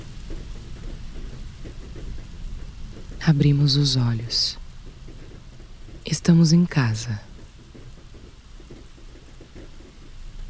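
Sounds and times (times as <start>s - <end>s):
heavy rain beating against a home window: 0.0s - 10.4s
speech: 3.2s - 4.6s, 6.1s - 7.3s.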